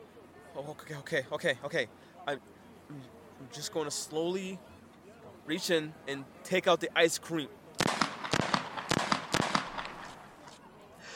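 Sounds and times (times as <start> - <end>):
speech: 0.6 - 4.7, 5.5 - 7.6
gunshots fired on an asphalt street: 7.8 - 10.5.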